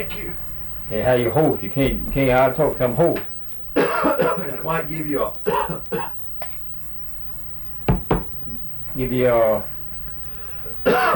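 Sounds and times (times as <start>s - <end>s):
speech: 0.0s - 3.4s, 4.0s - 6.2s, 9.0s - 9.7s, 10.6s - 11.1s
harsh raspy cough: 3.8s - 4.5s, 5.5s - 6.2s, 10.8s - 11.1s.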